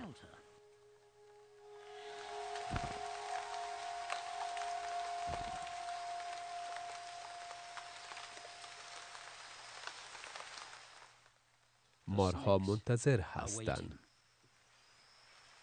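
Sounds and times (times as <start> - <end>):
heavy rain in a rainstorm: 1.9 - 11.4
low thumps: 2.6 - 3.6
speech: 12.2 - 14.0.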